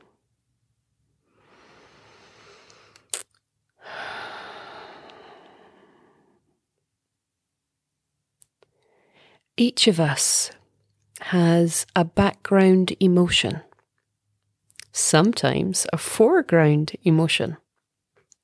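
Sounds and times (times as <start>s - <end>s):
deep slow breathing during a seated guided meditation: 1.2s - 3.1s, 3.8s - 6.5s
speech: 9.6s - 10.6s, 11.3s - 13.7s, 15.0s - 17.6s.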